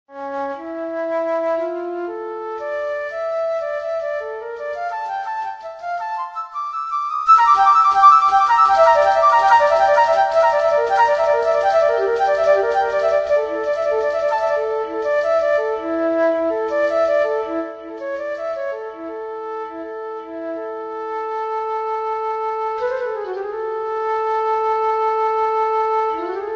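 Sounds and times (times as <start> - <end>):
solo flute: 0.1 - 26.5.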